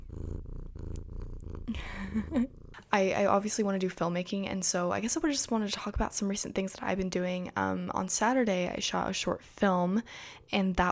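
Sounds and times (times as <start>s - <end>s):
male pet cat purring: 0.0s - 3.3s
speech: 1.7s - 10.9s.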